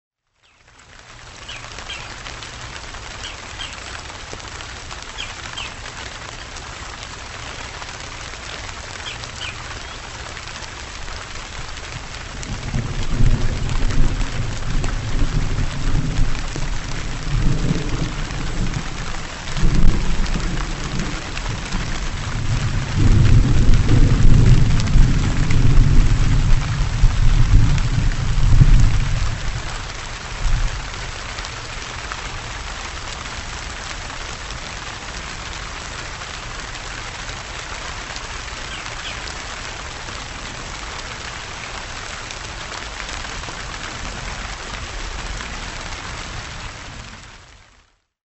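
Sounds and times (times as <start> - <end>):
thunderstorm: 11.6 - 31.1.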